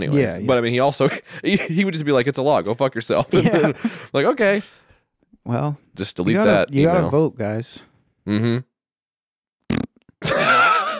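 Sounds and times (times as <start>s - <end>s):
speech: 0.0s - 4.8s, 5.4s - 8.7s
laughter: 3.2s - 4.1s, 10.2s - 10.9s
raspberry blown with the lips imitating a fart: 8.3s - 8.8s, 9.6s - 10.2s.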